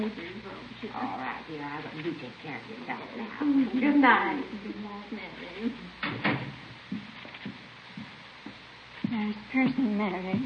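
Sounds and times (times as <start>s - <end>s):
speech: 0.0s - 6.4s, 9.1s - 10.4s
house door opening or closing as a guest leaves at night: 6.0s - 6.6s.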